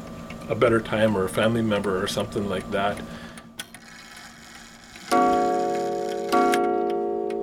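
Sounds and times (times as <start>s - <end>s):
speech: 0.5s - 3.2s
clock striking two o'clock: 3.9s - 7.4s.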